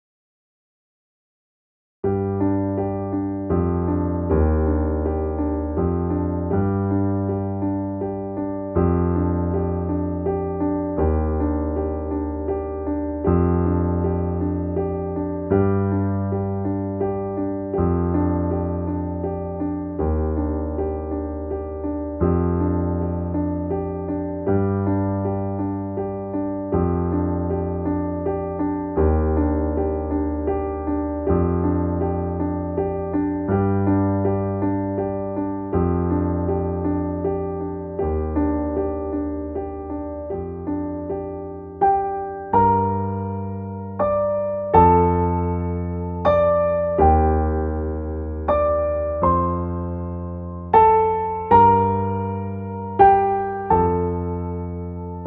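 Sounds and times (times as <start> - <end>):
piano piece: 2.0 - 55.2.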